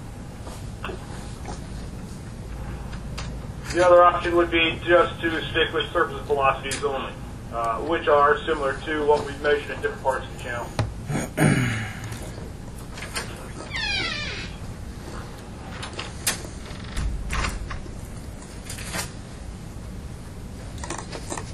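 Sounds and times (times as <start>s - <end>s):
speech: 3.7s - 11.9s
door creaking open: 12.9s - 14.8s, 15.6s - 18.0s
door mechanism clicks and rattles: 15.6s - 18.0s.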